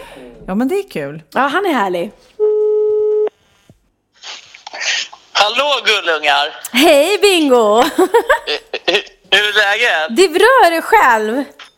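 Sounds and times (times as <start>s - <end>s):
speech: 0.2s - 2.5s, 5.4s - 11.6s
telephone ringing tone while a call is placed: 2.4s - 3.5s
laughter: 7.8s - 9.2s.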